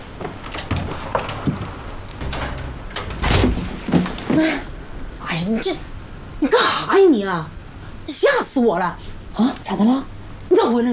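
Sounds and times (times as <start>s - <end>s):
door latch clicks: 0.5s - 4.2s
speech: 4.4s - 4.7s, 5.5s - 10.9s.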